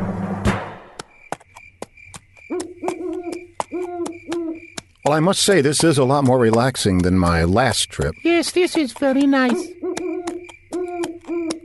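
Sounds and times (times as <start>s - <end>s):
owl pulling a carriage hooting: 2.5s - 4.6s, 9.4s - 11.6s
speech: 5.0s - 9.8s.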